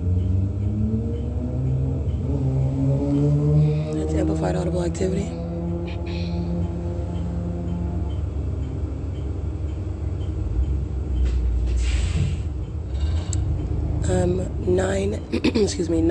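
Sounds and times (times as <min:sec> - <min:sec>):
large truck rumbling past: 0:00.0 - 0:16.0
speech: 0:04.5 - 0:06.1, 0:14.2 - 0:16.0
hissing air-brake-like bursts: 0:11.6 - 0:12.6.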